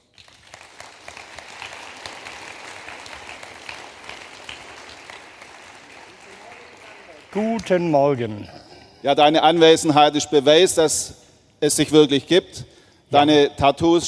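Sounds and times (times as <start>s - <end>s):
crowd applauding: 0.0s - 8.1s
speech: 7.3s - 14.0s.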